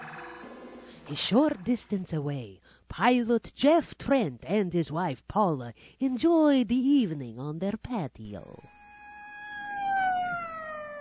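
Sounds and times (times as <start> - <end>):
speech: 1.1 - 8.8
emergency siren wailing: 8.6 - 11.0.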